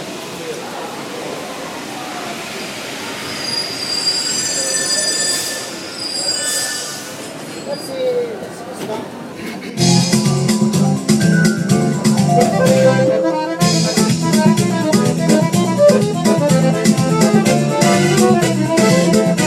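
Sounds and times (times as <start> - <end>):
Paris metro train pulling in with a rumble: 0.0 - 7.7, 8.3 - 19.4
metro train wheels squealing: 3.2 - 8.2.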